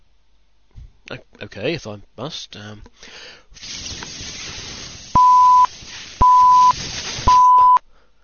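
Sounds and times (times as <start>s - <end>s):
soft hiss: 0.0s - 8.2s
speech: 1.1s - 4.0s
electronic beeps from a breath test device: 5.2s - 7.8s.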